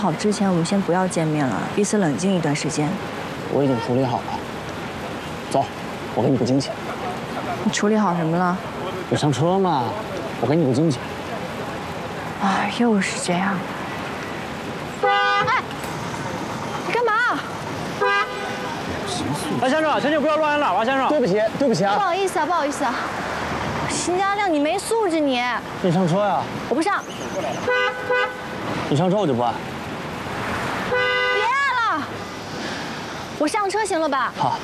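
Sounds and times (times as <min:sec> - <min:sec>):
speech: 0:00.0 - 0:04.5, 0:05.5 - 0:11.1, 0:12.4 - 0:13.8, 0:19.6 - 0:23.3, 0:24.0 - 0:29.7, 0:33.4 - 0:34.6
people talking and arguing: 0:00.0 - 0:30.5, 0:31.2 - 0:34.6
car horn honking in short loud blasts: 0:15.0 - 0:15.6, 0:18.0 - 0:18.8, 0:27.6 - 0:28.6, 0:30.9 - 0:31.8.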